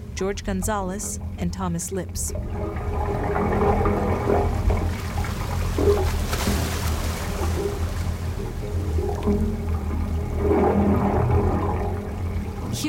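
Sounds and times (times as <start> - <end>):
seawater gurgling and sloshing through submerged wave organ pipes on San Francisco Bay: 0.0 - 12.8
speech: 0.2 - 4.6.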